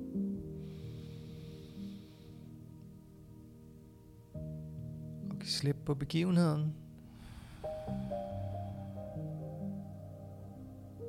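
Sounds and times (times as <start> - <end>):
low musical drone: 0.0 - 11.0
deep breath in and out: 0.5 - 2.8, 7.0 - 9.9
speech: 5.5 - 6.8.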